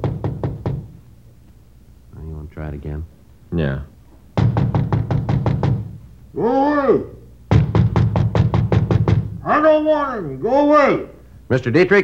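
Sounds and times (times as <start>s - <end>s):
knocking on a wooden door: 0.0s - 1.0s, 4.4s - 6.0s, 7.5s - 9.4s
speech: 2.6s - 4.0s, 6.4s - 7.2s, 9.4s - 12.0s.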